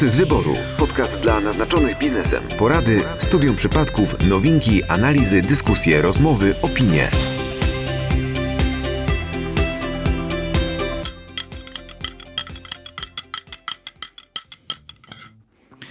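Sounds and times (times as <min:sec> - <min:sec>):
speech: 0:00.0 - 0:07.4
music: 0:00.0 - 0:15.1
spoon stirring briskly in a cup: 0:11.1 - 0:15.3.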